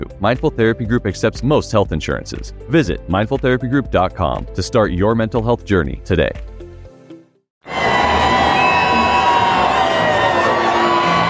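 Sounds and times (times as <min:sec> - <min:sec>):
speech: 0:00.0 - 0:06.5
large crowd cheering and shouting at a victory parade: 0:07.6 - 0:11.2.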